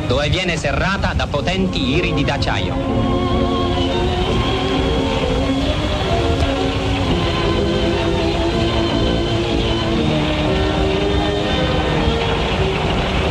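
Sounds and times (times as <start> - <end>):
speech: 0.1 - 3.4
centrifuge machine spinning a concrete pipe mold: 2.7 - 13.3.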